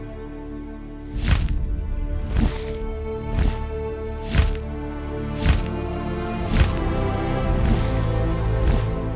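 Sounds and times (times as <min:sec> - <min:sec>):
powerful membranous wings of a huge beast flapping: 0:01.1 - 0:09.0.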